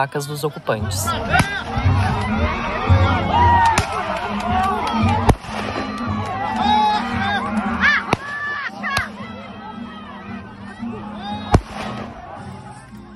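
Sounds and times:
speech: 0.0s - 3.2s
noisy crowd of agitated voices and chatter at an occupied area: 0.0s - 13.1s
gunshots fired into the air by military police: 3.7s - 4.2s, 5.2s - 6.0s, 8.0s - 9.1s, 11.5s - 12.2s.

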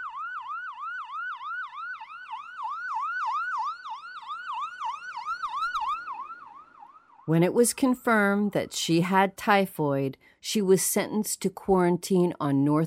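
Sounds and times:
ambulance siren wailing in rise-and-fall sweeps: 0.0s - 8.7s
speech: 7.3s - 12.8s.

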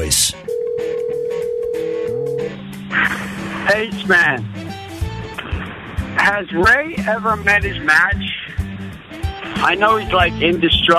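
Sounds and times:
speech: 0.1s - 0.5s, 3.7s - 4.6s, 6.3s - 8.3s, 9.6s - 10.9s
telephone tones while checking voicemail: 0.4s - 2.6s.

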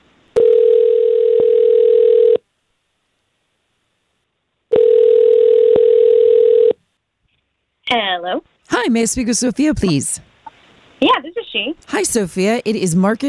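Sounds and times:
phone line ringing on an outgoing call: 0.4s - 2.4s, 4.7s - 6.8s
speech: 7.9s - 10.3s, 11.6s - 13.2s.

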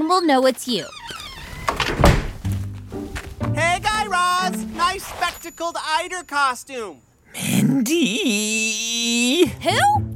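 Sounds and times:
speech: 0.1s - 1.0s, 5.0s - 10.0s
door opening: 0.8s - 4.0s
door latch clunk: 1.6s - 2.4s.

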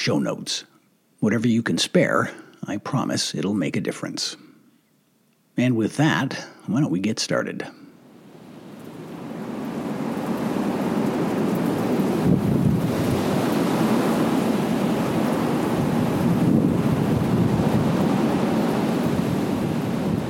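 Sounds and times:
speech: 0.0s - 4.5s, 5.6s - 7.8s
wind blowing outside a house: 7.9s - 20.2s.

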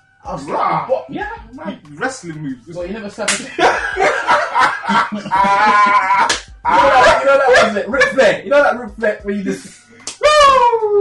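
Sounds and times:
excited voices: 0.3s - 1.2s, 3.4s - 8.4s, 9.5s - 11.0s
people laughing: 3.4s - 7.8s
hand slapping a chest: 6.2s - 6.6s, 10.0s - 10.2s.

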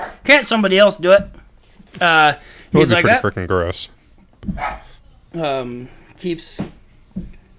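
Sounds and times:
speech: 0.3s - 7.4s
laughter: 2.8s - 3.9s
dogs barking: 4.6s - 4.9s.

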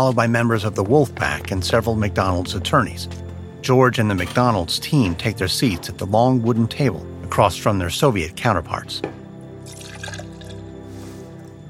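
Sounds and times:
speech: 0.0s - 9.2s
water pouring from a pitcher into a glass: 9.6s - 10.7s.

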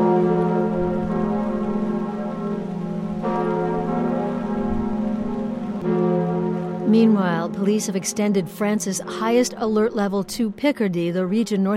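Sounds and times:
deep cathedral church bells tolling: 0.0s - 11.7s
speech: 6.9s - 11.7s.

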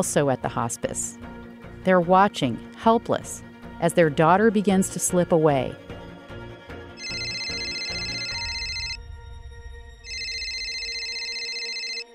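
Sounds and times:
speech: 0.0s - 5.9s
phone ringing with loud electronic trill: 7.0s - 9.0s, 10.1s - 12.1s.

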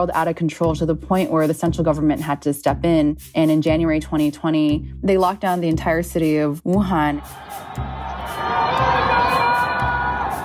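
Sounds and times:
speech: 0.0s - 8.0s
residents shouting and wailing from high-rise apartments in Wuhan China: 7.2s - 10.4s.

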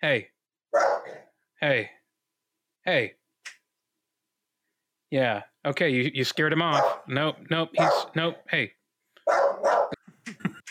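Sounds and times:
speech: 0.0s - 0.9s, 1.6s - 2.0s, 2.8s - 3.6s, 5.1s - 9.4s
dog barking: 0.7s - 1.3s, 6.7s - 7.1s, 7.8s - 8.4s, 9.2s - 10.0s
dog giving soft short yips or huffs: 0.8s - 1.2s, 6.7s - 7.0s, 7.8s - 8.1s, 9.3s - 10.0s.

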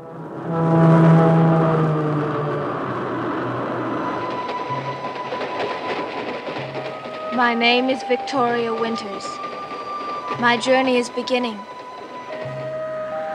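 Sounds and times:
low horn-like tone: 0.0s - 4.1s
train clattering along the rails: 3.3s - 13.3s
speech: 7.4s - 9.5s, 10.4s - 11.7s.

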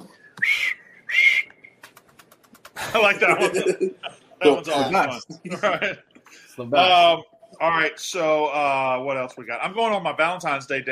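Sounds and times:
referee whistle blasts for shot clock violation: 0.2s - 1.8s
laughter: 2.7s - 6.0s
speech: 2.9s - 10.8s.

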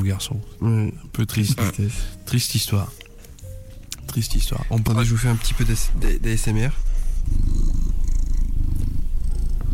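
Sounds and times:
speech: 0.0s - 3.0s, 4.1s - 7.8s
domestic cat purring: 5.9s - 9.7s.

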